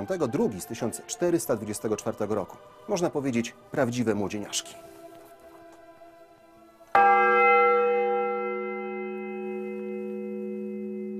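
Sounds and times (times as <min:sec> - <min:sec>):
speech: 0:00.0 - 0:05.0
old church bell strike: 0:06.9 - 0:11.1.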